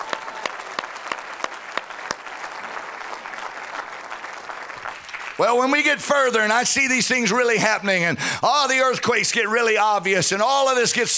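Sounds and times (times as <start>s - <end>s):
crowd clapping: 0.0s - 6.4s
speech: 5.4s - 11.1s.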